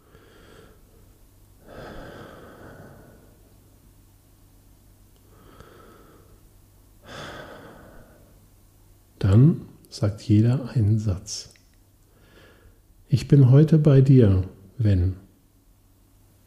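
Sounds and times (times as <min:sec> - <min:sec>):
slow soft breaths drawn in and let out: 0:00.0 - 0:03.6, 0:05.2 - 0:08.4, 0:12.0 - 0:12.9
faint low hum: 0:00.0 - 0:16.4
speech: 0:09.3 - 0:11.6, 0:13.1 - 0:15.2.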